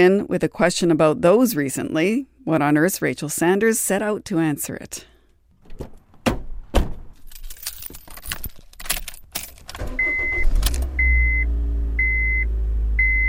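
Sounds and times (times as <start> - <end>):
speech: 0.0 - 5.1
keys jangling and clattering: 7.1 - 9.9
engine of a 16-year-old Honda Fit starting and idling: 9.4 - 13.2.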